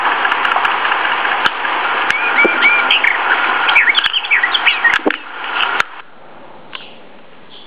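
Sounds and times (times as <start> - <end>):
Western Orphean warbler singing a scratchy chattering warble: 0.1 - 5.8
Western Orphean warbler short scattered chirps: 2.1 - 5.0.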